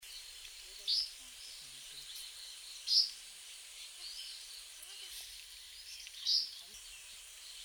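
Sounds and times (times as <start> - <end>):
spotted flycatcher calling: 0.1 - 4.7, 5.6 - 7.6.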